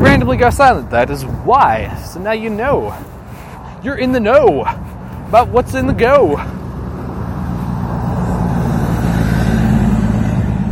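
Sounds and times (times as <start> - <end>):
speech: 0.0 - 3.1, 3.8 - 6.6
fire truck with no lights on driving past: 6.4 - 10.6.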